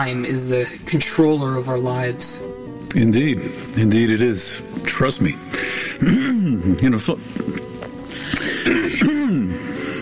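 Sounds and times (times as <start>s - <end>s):
speech: 0.0s - 7.7s
person clearing throat: 6.0s - 6.8s, 8.4s - 9.6s.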